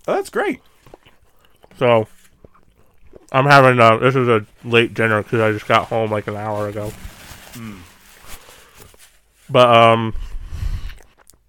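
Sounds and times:
speech: 0.0 - 0.7, 1.8 - 2.2, 3.3 - 7.9, 9.5 - 10.3
chewing a bite of pizza: 0.6 - 3.4.

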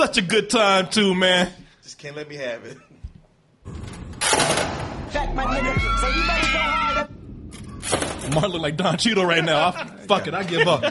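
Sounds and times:
speech: 0.0 - 2.9, 5.1 - 7.2, 7.9 - 10.9
low rumble: 5.0 - 8.3
girl screaming in a car: 5.4 - 7.1
laughter: 8.7 - 10.9.

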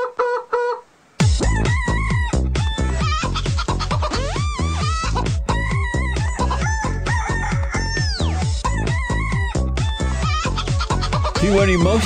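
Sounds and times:
squawking chicken clucks: 0.0 - 12.0
bouncy novelty chicken song with thumping beat: 1.2 - 12.0
rooster crowing: 5.7 - 8.5
speech: 11.6 - 12.0.

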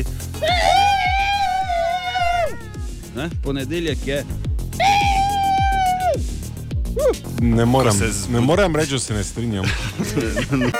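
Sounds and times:
steady thumping beat: 0.0 - 8.7
group of people screaming together: 0.4 - 3.0, 4.8 - 6.3
speech: 3.2 - 5.0, 6.9 - 10.7
laughter: 9.6 - 10.7.

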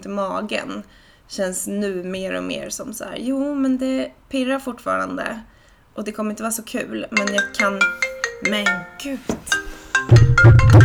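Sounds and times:
speech: 0.0 - 10.8
mobile phone ringing with melodic electronic tones: 7.2 - 10.8.

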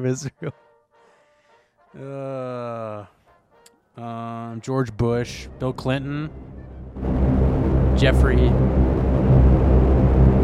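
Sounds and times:
speech: 0.0 - 0.7, 1.9 - 3.2, 4.0 - 7.4, 8.0 - 9.0
steady heavy low rumble: 6.3 - 10.4.

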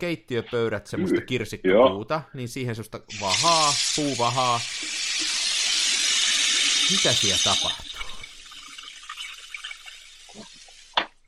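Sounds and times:
speech: 0.0 - 5.0, 6.9 - 7.9
cold water being poured in a steady stream: 3.1 - 11.1.

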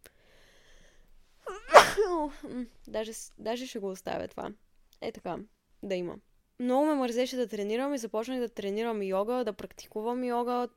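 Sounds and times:
single loud sneeze: 1.5 - 2.4
speech: 2.0 - 10.7.

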